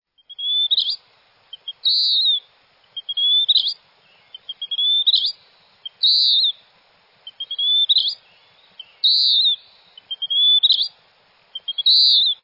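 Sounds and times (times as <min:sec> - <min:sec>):
Western Wood peewee: 0:00.2 - 0:06.6, 0:07.3 - 0:11.0, 0:11.6 - 0:12.4.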